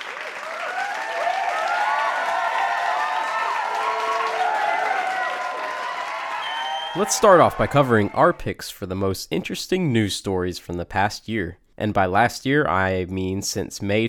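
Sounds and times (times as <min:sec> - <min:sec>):
crowd clapping: 0:00.0 - 0:08.4
people whooping and cheering: 0:00.0 - 0:08.5
speech: 0:07.0 - 0:14.0.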